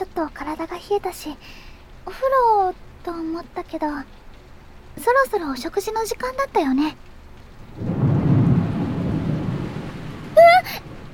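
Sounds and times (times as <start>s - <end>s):
steady rain from a passing shower: 0.0s - 11.1s
speech: 0.2s - 4.2s, 5.0s - 7.1s
deep rumbling roll of thunder: 7.6s - 11.1s.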